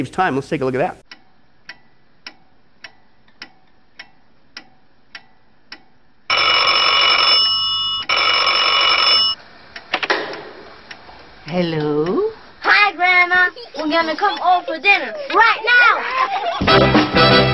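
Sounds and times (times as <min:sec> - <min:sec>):
speech: 0:00.0 - 0:01.0, 0:11.6 - 0:12.0, 0:13.9 - 0:17.4
clock-like ticks: 0:01.0 - 0:06.4, 0:11.6 - 0:15.6
shrill telephone bell ringing: 0:06.3 - 0:09.4
laughter: 0:13.3 - 0:17.0.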